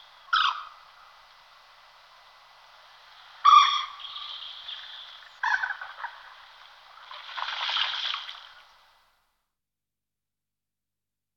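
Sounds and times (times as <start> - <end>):
Common moorhen Gallinula chloropus calling: 0.0 - 1.0, 3.2 - 6.5.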